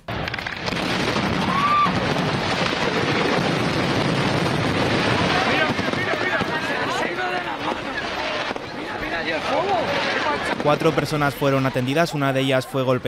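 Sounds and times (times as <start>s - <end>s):
fireworks rockets whistling and shrieking: 0.0s - 12.0s
people's voices: 4.9s - 13.0s
speech: 10.7s - 13.0s.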